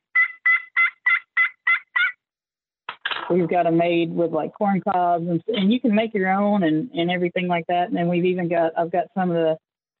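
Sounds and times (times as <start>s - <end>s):
turkey pot call played with a yellow wood striker: 0.0s - 2.2s
speech: 3.3s - 9.6s.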